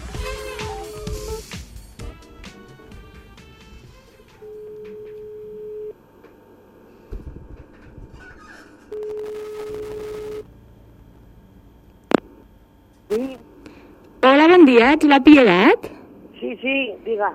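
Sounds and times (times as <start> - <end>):
telephone ringback tone while calling a contest winner: 4.4 - 6.0, 8.9 - 10.5
speech: 14.7 - 15.9, 16.5 - 17.3.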